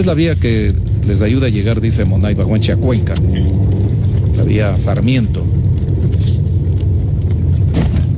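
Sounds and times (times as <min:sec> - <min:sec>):
speech: 0:00.0 - 0:03.7, 0:04.4 - 0:05.6
car rolling along a busy secondary road with heavy low rumble, from inside: 0:00.0 - 0:08.1.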